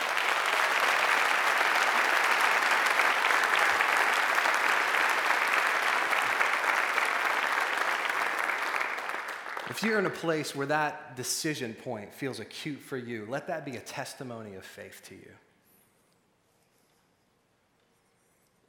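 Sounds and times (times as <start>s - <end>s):
large audience of hundreds clapping: 0.0s - 10.4s
speech: 9.8s - 15.5s.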